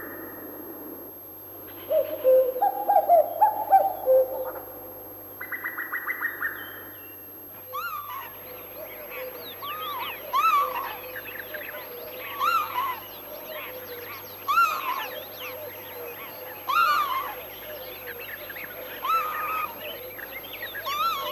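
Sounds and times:
male common cuckoos cuckooing: 1.8s - 4.7s, 7.7s - 21.3s
other birds chirping: 7.8s - 21.3s.

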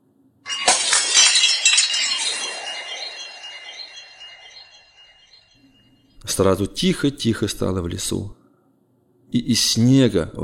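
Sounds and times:
fragile glass object shattering: 0.5s - 5.6s
glass pieces tinkling and ringing: 0.5s - 5.6s
speech: 6.3s - 8.4s, 9.3s - 10.4s.

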